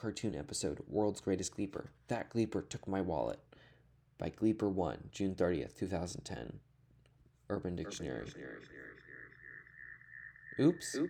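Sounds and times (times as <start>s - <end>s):
speech: 0.0s - 6.7s, 7.5s - 9.0s, 10.6s - 11.0s
smeared voice: 7.8s - 9.8s, 10.5s - 11.0s
low hum: 7.8s - 11.0s
steady ringing tone: 7.8s - 11.0s.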